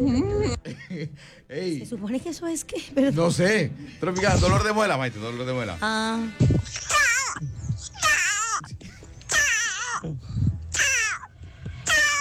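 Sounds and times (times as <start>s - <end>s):
speech: 1.0s - 7.5s
person imitating a cat and a gecko: 6.6s - 8.7s, 9.3s - 10.0s, 10.8s - 11.3s, 11.9s - 12.1s.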